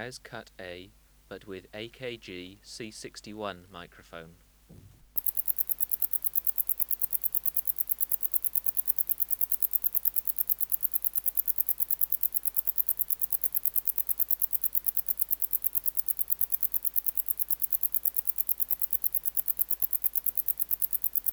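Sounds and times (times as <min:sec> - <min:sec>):
speech: 0:00.0 - 0:05.0
brief low thump: 0:04.7 - 0:05.2
Wart-biter bush-cricket song, Decticus verrucivorus: 0:05.2 - 0:21.3.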